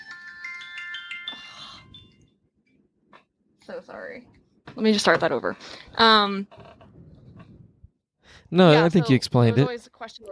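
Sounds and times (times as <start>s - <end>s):
phone ringtone with bright electronic tones: 0.0s - 2.3s
speech: 3.7s - 6.7s, 8.5s - 10.2s.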